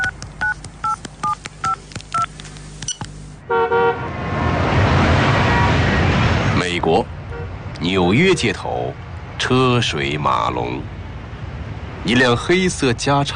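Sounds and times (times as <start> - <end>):
mobile phone keypad beeps as a number is dialed: 0.0 - 3.1
busy street traffic: 0.0 - 13.3
car horn toot: 3.5 - 4.1
speech: 7.9 - 11.0, 12.0 - 13.3.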